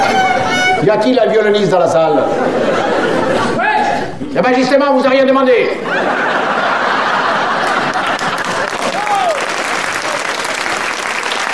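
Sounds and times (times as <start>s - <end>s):
speech: 0.8s - 3.6s, 4.3s - 6.4s
faint chuckles: 2.2s - 4.4s, 5.7s - 10.3s
sustained applause from a large audience: 6.0s - 11.5s.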